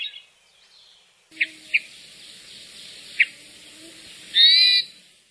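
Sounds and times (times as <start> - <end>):
hermit thrush singing: 1.3 - 5.2.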